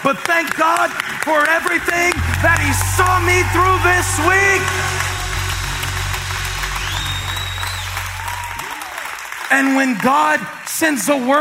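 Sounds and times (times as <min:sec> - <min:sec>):
speech: 0:00.0 - 0:05.1, 0:09.5 - 0:11.4
crowd applause: 0:00.0 - 0:10.1
low hum: 0:01.5 - 0:09.4
faint whistle-like tone: 0:01.8 - 0:09.1.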